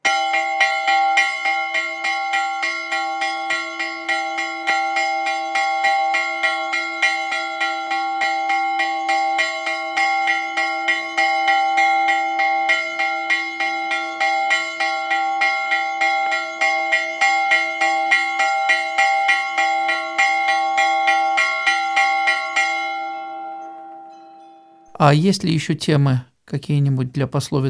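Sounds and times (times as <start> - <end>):
nabat alarm bell ringing: 0.0 - 25.0
speech: 25.0 - 27.6.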